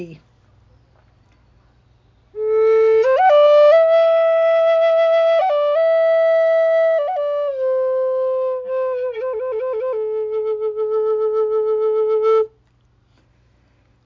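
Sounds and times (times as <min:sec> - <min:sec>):
flute: 0:02.3 - 0:12.6.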